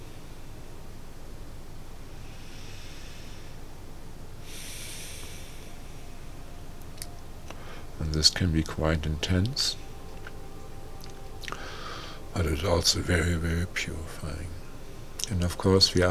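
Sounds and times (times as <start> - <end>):
low steady hum: 0.0 - 16.1
deep breathing: 2.1 - 3.8, 4.4 - 6.6, 7.5 - 8.0, 11.4 - 12.3
speech: 8.1 - 9.8, 12.4 - 14.6, 15.3 - 16.1.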